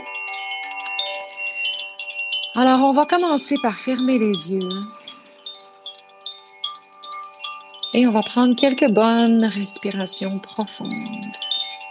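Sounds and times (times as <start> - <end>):
cluster of chimes ringing as meditation accompaniment: 0.0 - 11.8
speech: 2.6 - 5.0, 7.9 - 11.5.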